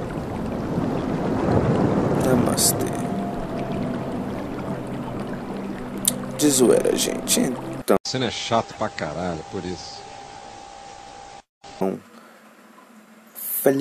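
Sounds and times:
waterfall roaring: 0.0 - 7.9
speech: 2.3 - 3.0, 6.4 - 10.1, 11.8 - 12.1.

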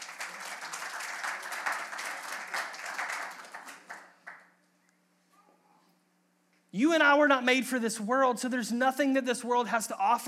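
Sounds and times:
audience applause: 0.0 - 4.6
speech: 6.8 - 10.2.

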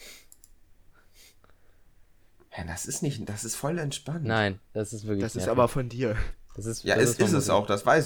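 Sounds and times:
faint computer keyboard typing: 0.2 - 0.6
speech: 2.6 - 8.0.

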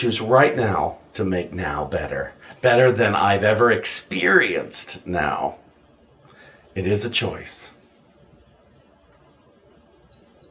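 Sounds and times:
speech: 0.0 - 5.6, 6.8 - 7.8
high bird chirps: 9.9 - 10.4.

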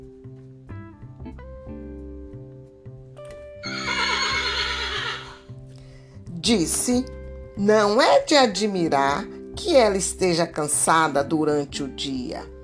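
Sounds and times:
soft music: 0.0 - 12.6
horse neighing: 3.6 - 5.5
speech: 6.4 - 12.6.

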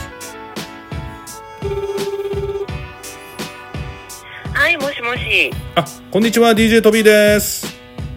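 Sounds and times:
rhythmic music with punchy beats: 0.0 - 8.1
speech: 1.6 - 2.0, 4.7 - 7.7
warbling buzzing phone ringback tone during an outgoing call: 1.6 - 2.8.

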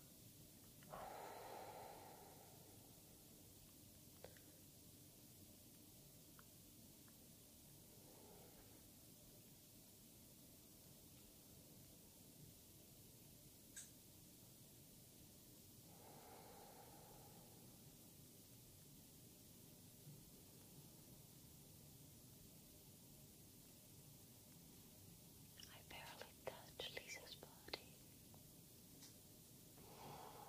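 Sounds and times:
steady hiss: 0.0 - 30.4.

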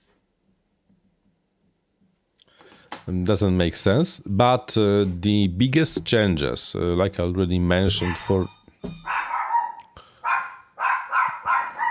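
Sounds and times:
speech: 3.1 - 8.6
dog barking: 7.9 - 11.8.

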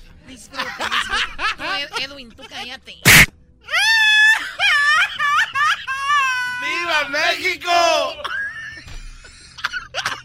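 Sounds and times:
speech: 0.3 - 1.3, 2.0 - 3.3, 6.9 - 8.4
laughter: 0.5 - 2.8, 3.7 - 10.2
person crying and screaming during a game show: 3.1 - 8.5.

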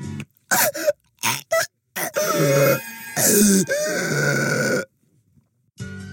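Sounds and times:
woman gasping and grunting in a staged shower stabbing effect: 0.5 - 4.9.

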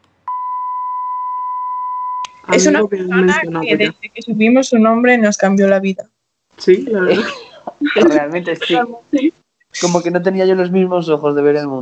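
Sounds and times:
steady high censor bleep: 0.3 - 2.8
speech: 2.5 - 7.4, 8.0 - 11.7
laughter: 6.6 - 10.1.

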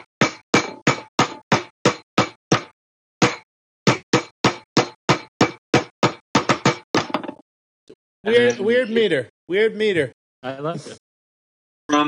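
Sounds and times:
rhythmic knocking imitating a door knock: 0.0 - 7.4
speech: 8.2 - 11.0.

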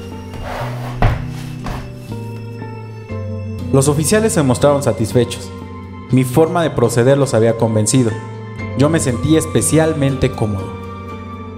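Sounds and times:
wooden chairs set down and shifted on the floor: 0.4 - 2.0
speech: 3.7 - 10.8.

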